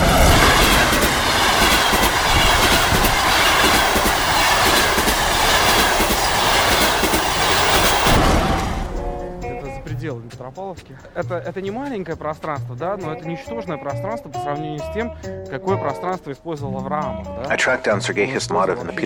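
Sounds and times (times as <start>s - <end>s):
train wheels clickety-clack on rails: 0.0s - 9.6s
speech: 10.7s - 19.0s.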